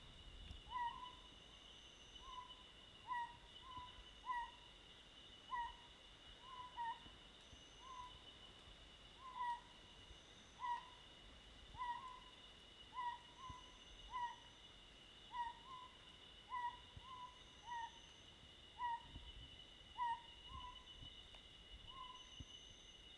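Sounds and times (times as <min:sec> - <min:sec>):
Otus owl: 0:00.7 - 0:01.3, 0:02.0 - 0:04.6, 0:05.5 - 0:08.2, 0:09.2 - 0:11.0, 0:11.8 - 0:12.3, 0:12.9 - 0:14.6, 0:15.3 - 0:18.2, 0:18.8 - 0:19.2, 0:20.0 - 0:20.9, 0:21.9 - 0:22.9.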